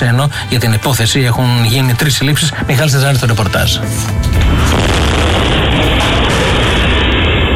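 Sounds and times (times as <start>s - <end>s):
speech: 0.0s - 5.6s
deep heavy explosion at a vinegar factory in Examilia Corinthia Greece: 4.3s - 7.5s.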